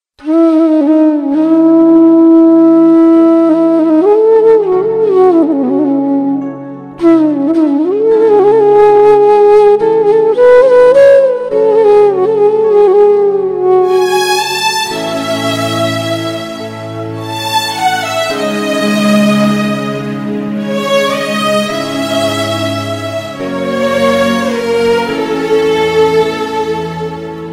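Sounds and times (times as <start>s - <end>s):
flute with electronica: 0.2s - 27.5s.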